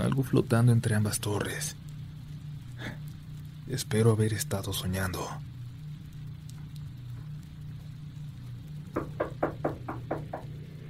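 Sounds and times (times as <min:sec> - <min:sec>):
faint low hum: 0:00.0 - 0:10.8
speech: 0:00.2 - 0:01.8, 0:03.7 - 0:05.5
knocking on a door: 0:09.0 - 0:10.6.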